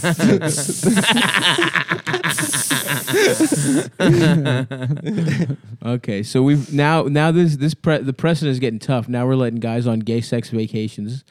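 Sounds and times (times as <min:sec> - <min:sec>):
voice imitating sizzling on hot coals: 0:00.0 - 0:01.3, 0:02.2 - 0:03.6
speech: 0:00.0 - 0:02.2, 0:03.8 - 0:11.2
person laughing: 0:00.0 - 0:05.7.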